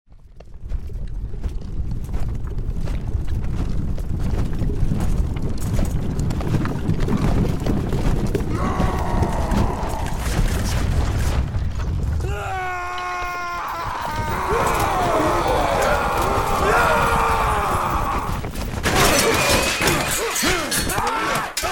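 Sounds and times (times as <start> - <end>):
horses in battle: 0.1 - 21.7
voices in battle: 12.3 - 21.7
swords clashing in battle: 18.9 - 21.7.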